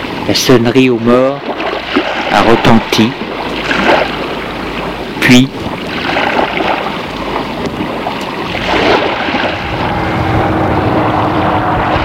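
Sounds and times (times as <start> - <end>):
speech: 0.3 - 1.5, 2.3 - 3.2, 5.3 - 5.7
airplane flying over a site to check radioactivity: 4.1 - 12.0.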